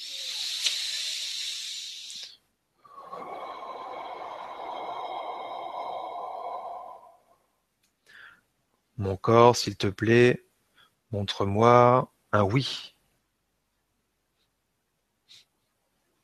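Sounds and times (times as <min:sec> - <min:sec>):
short breath puff: 0:00.0 - 0:02.4
person blowing out a deep breath: 0:00.0 - 0:07.2
speech: 0:09.0 - 0:10.4, 0:11.1 - 0:12.9.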